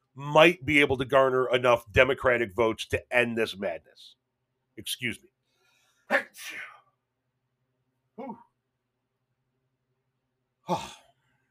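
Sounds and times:
speech: 0.2 - 4.2, 4.8 - 5.3, 6.1 - 6.7, 8.2 - 8.4, 10.7 - 11.0
person sneezing: 8.2 - 8.5, 10.6 - 11.2.

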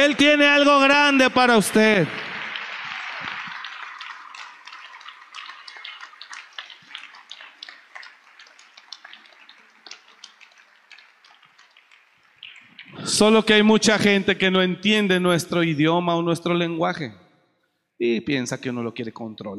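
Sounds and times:
speech: 0.0 - 2.3, 13.1 - 17.2, 18.0 - 19.5
audience applauding: 0.0 - 13.7.

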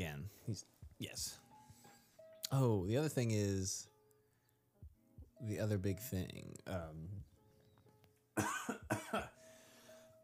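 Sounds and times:
speech: 0.0 - 1.4, 2.5 - 3.9, 5.4 - 7.3, 8.4 - 9.4
harsh loud coughs: 8.4 - 9.4.

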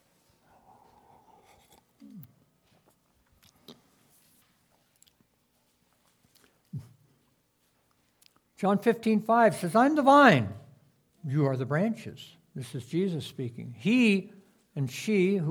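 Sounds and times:
person sipping coffee from a cup: 0.6 - 4.1
speech: 8.6 - 10.6, 11.2 - 15.4.

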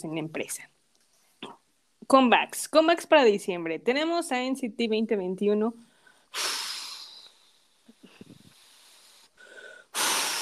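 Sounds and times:
speech: 0.0 - 0.8, 2.1 - 6.6
heavy breathing into the microphone: 5.9 - 10.3.

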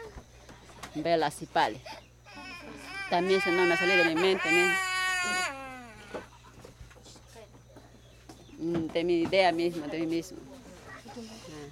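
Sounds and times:
speech: 1.0 - 2.0, 3.1 - 4.9, 8.6 - 10.5, 11.2 - 11.4
slightly sick baby girl crying: 2.3 - 6.3.

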